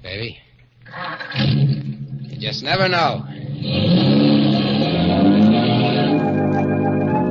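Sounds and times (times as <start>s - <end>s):
speech: 0.0s - 1.6s, 2.4s - 4.3s
car engine revving while driving: 1.3s - 2.6s, 3.2s - 7.2s.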